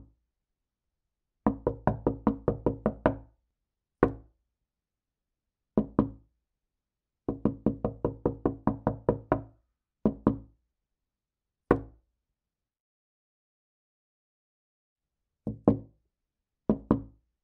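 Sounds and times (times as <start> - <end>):
knocking on window: 1.5 - 3.2, 5.8 - 6.2, 7.3 - 9.5, 10.0 - 10.4, 16.7 - 17.1.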